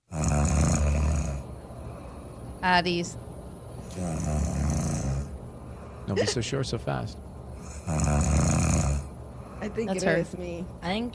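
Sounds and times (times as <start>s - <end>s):
loud raspy snoring: 0.0s - 1.5s, 3.9s - 5.4s, 7.6s - 9.2s
speech: 2.6s - 3.3s, 4.0s - 4.6s, 6.1s - 7.2s, 7.9s - 8.7s, 9.6s - 11.1s.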